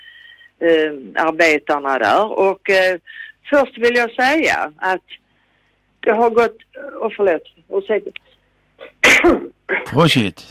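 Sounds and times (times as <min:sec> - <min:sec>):
speech: 0:00.6 - 0:05.2, 0:06.0 - 0:08.2, 0:08.8 - 0:10.4
sharp loud sneeze: 0:08.8 - 0:09.9.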